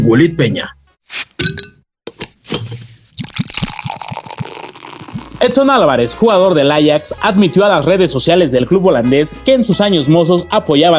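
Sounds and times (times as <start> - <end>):
speech: 0.0 - 0.8, 5.4 - 10.9
glasses clinking in a toast: 2.2 - 5.5.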